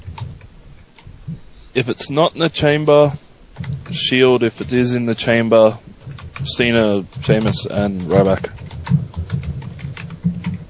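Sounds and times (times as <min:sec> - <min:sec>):
low hum: 0:00.0 - 0:10.6
speech: 0:01.8 - 0:08.6
typing on a computer keyboard: 0:03.6 - 0:04.9, 0:06.0 - 0:10.6.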